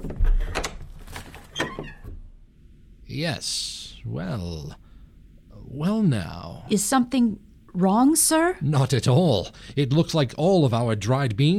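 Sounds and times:
pantry door being opened: 0.0s - 2.2s
speech: 3.2s - 4.8s, 5.7s - 11.5s.

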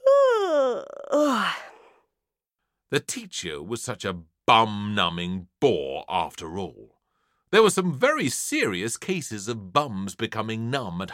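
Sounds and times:
person doing a long theatrical yawn: 0.0s - 2.0s
speech: 2.9s - 11.1s.

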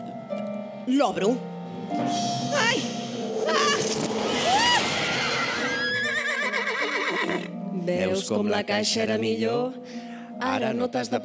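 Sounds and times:
speech: 0.8s - 4.6s, 7.9s - 11.2s
horse whinnying: 2.8s - 7.6s.

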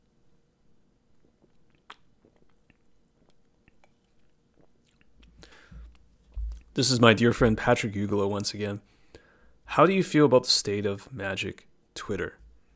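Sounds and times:
person sipping beer and swallowing: 1.1s - 6.7s
soft wet mouth clicks: 1.2s - 6.7s
speech: 6.8s - 8.9s, 9.8s - 12.4s.

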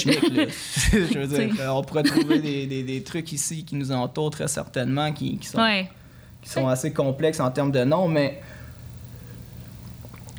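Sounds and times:
laughter: 0.0s - 2.8s
speech: 0.0s - 8.6s
low steady hum: 0.0s - 10.3s
sipping and swallowing water: 8.5s - 10.3s
soft wet mouth clicks: 9.4s - 10.3s.

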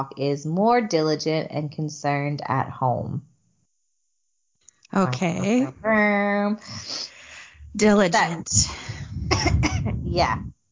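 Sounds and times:
speech: 0.0s - 3.3s, 4.9s - 7.1s, 7.7s - 10.6s
rough coughs: 9.3s - 9.9s.

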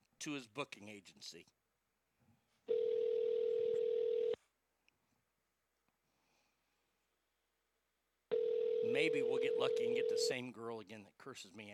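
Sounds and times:
speech: 0.2s - 1.6s, 8.9s - 11.7s
telephone tone as a phone call is placed: 2.7s - 4.4s, 8.3s - 10.3s.

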